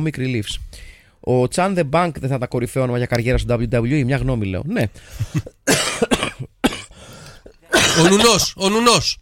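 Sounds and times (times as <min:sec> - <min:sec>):
speech: 0:00.0 - 0:06.5, 0:08.0 - 0:09.2
person coughing into the microphone: 0:05.3 - 0:08.6.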